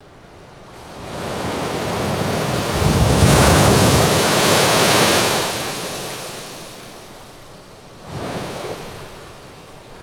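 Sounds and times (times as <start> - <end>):
ocean wave crashing: 2.2 - 6.1.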